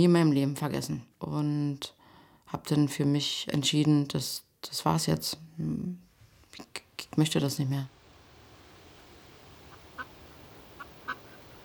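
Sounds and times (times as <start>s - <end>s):
speech: 0.0s - 8.0s
steady low hiss: 0.0s - 11.6s
faint ducks quacking: 9.6s - 11.6s.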